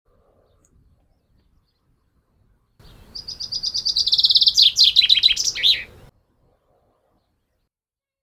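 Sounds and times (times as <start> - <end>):
common chaffinch Fringilla coelebs singing: 2.8 - 6.1.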